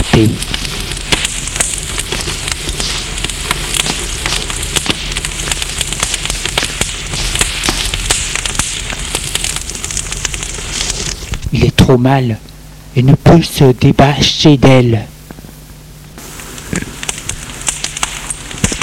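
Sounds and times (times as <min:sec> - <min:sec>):
spreading fire crackling with pops and snaps: 0:00.0 - 0:18.8
speech: 0:00.2 - 0:00.5, 0:11.9 - 0:15.1.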